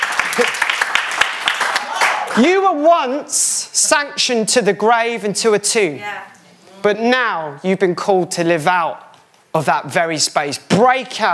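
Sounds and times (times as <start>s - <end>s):
crowd applause with dense clapping: 0.0s - 2.5s
speech: 0.4s - 0.7s, 2.4s - 11.3s.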